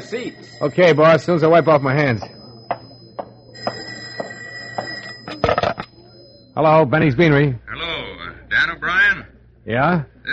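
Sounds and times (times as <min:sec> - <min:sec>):
speech: 0:00.0 - 0:02.4, 0:06.6 - 0:07.6, 0:09.6 - 0:10.3
telephone ringing with a steady bright bell tone: 0:00.0 - 0:06.8.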